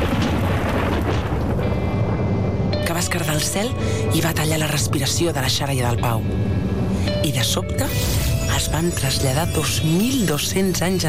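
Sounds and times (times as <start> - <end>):
thunder from a powerful lightning strike: 0.0 - 7.3
speech: 3.1 - 11.0.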